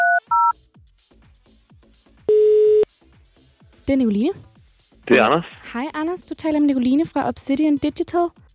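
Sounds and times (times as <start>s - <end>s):
short electronic telephone dialing beeps: 0.0s - 0.5s, 2.3s - 2.8s
telephone ringing tone on the line: 2.3s - 2.8s
speech: 3.9s - 4.5s, 5.1s - 8.4s.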